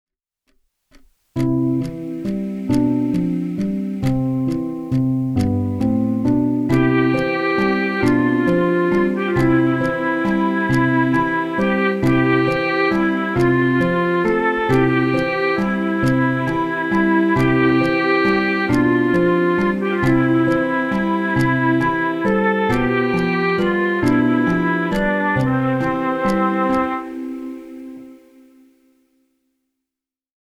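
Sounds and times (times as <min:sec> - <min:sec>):
song: 0:01.4 - 0:28.8.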